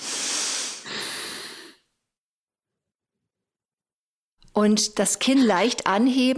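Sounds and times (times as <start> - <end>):
soft passive exhale in a breathing exercise: 0.0 - 1.9
strong airy active inhale in a breathing exercise: 0.0 - 1.9
speech: 4.6 - 6.3.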